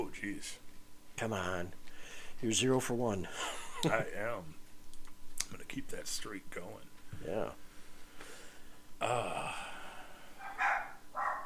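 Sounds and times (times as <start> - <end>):
speech: 0.1 - 0.6, 1.2 - 4.6, 5.5 - 7.6, 9.0 - 9.7
dog barking: 10.4 - 11.4.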